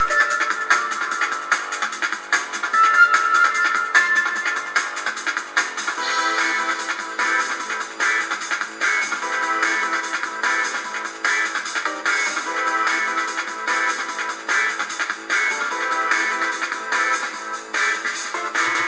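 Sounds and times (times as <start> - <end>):
loud music: 0.0 - 18.8.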